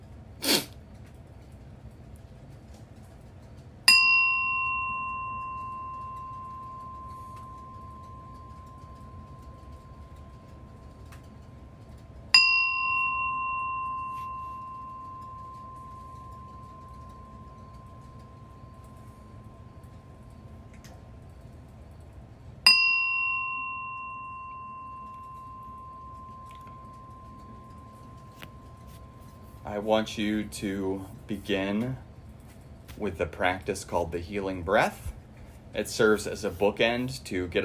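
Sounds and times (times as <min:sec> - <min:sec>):
meditation bell ringing: 0:03.8 - 0:32.2
speech: 0:29.7 - 0:32.0, 0:33.0 - 0:35.1, 0:35.7 - 0:37.6.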